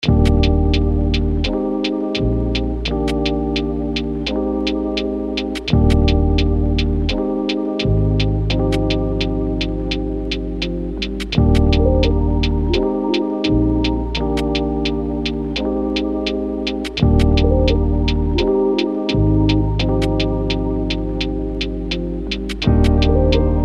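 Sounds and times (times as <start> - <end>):
lofi melody loop in D major at 85 BPM: 0.0 - 23.6.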